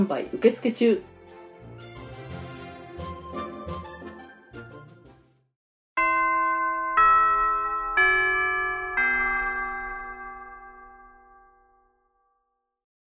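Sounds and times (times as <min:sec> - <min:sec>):
speech: 0:00.0 - 0:01.1
busy music: 0:00.0 - 0:05.3
chime ringing: 0:06.0 - 0:12.0.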